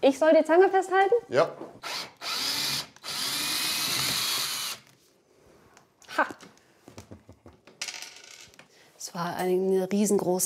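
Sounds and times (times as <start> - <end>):
speech: 0.0 - 1.8, 9.2 - 10.4
cordless screwdriver whirring: 1.8 - 4.9.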